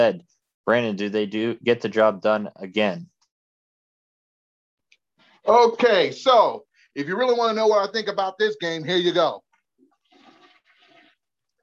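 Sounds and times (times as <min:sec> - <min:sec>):
speech: 0:00.0 - 0:03.1, 0:05.4 - 0:09.4
toilet flushing: 0:09.9 - 0:11.3.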